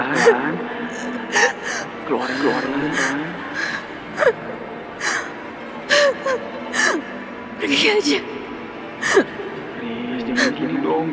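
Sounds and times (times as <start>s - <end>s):
rapid ragged panicked gasping breaths: 0.0s - 4.4s, 5.0s - 7.7s, 9.0s - 9.5s, 10.4s - 10.6s
speech: 0.1s - 4.5s, 7.6s - 8.3s, 9.0s - 9.4s, 10.3s - 11.1s.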